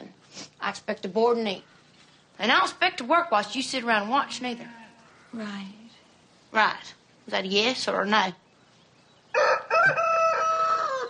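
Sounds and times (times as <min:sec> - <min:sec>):
speech: 0:00.7 - 0:01.7, 0:02.4 - 0:05.8, 0:06.5 - 0:08.4
aggressive spurred rooster crowing: 0:09.3 - 0:11.0.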